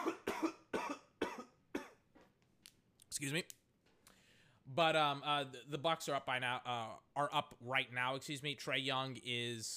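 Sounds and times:
person coughing harshly: 0:00.0 - 0:02.0
speech: 0:03.2 - 0:03.6, 0:04.7 - 0:09.7.

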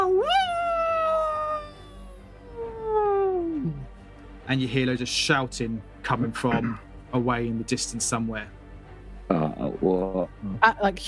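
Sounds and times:
voice imitating a wolf howling: 0:00.0 - 0:03.9, 0:06.5 - 0:06.8
speech: 0:04.5 - 0:08.6, 0:09.3 - 0:11.0.

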